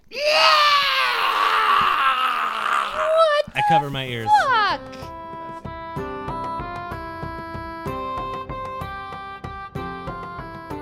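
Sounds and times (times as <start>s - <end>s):
hideous underground-dwelling creature screeching: 0.0s - 4.6s
speech: 3.7s - 5.2s.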